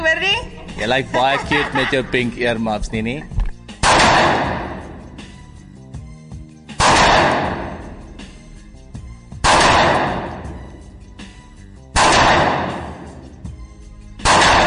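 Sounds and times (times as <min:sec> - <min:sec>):
laughter: 0:00.7 - 0:03.3
speech: 0:00.8 - 0:03.4
handgun shots from target shooting at a shooting range: 0:03.8 - 0:04.9, 0:06.8 - 0:07.9, 0:09.4 - 0:10.6, 0:12.0 - 0:13.2, 0:14.2 - 0:14.6.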